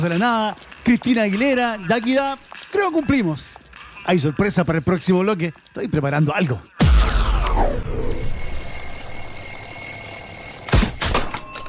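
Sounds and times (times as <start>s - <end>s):
speech: 0.0s - 6.7s, 7.6s - 8.4s
alarm clock ringing with shrill high-pitched electronic tone: 8.1s - 11.6s.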